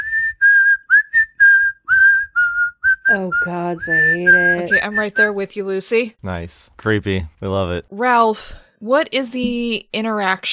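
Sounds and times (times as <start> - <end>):
person whistling a film tune: 0.0 - 5.3
speech: 3.1 - 10.5.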